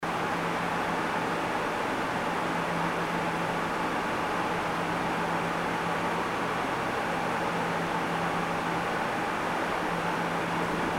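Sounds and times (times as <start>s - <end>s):
air conditioner: 0.0s - 10.9s.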